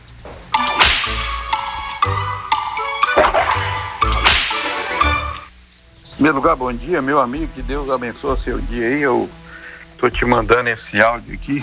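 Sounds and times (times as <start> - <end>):
ringing musical backing: 0.5 - 9.4
whip-crack sound effects: 0.7 - 1.4, 4.2 - 5.0
speech: 6.2 - 9.4, 10.0 - 11.6.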